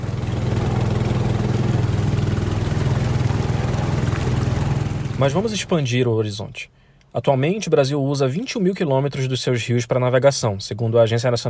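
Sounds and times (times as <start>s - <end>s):
rabeta outboard motor on small boat droning: 0.0s - 5.9s
speech: 5.2s - 11.4s.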